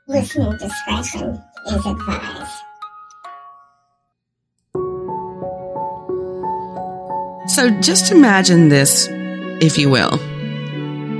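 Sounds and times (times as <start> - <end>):
bright repeated chiming tones: 0.0 - 4.2
speech: 0.1 - 2.6, 7.5 - 10.3
two-tone doorbell chime: 1.6 - 4.0.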